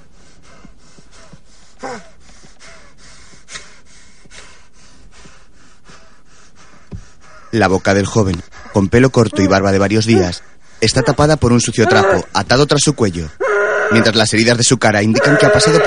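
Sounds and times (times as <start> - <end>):
ragged gasping breathing and panting: 0.0 - 12.4
speech: 1.8 - 2.2, 7.6 - 15.8.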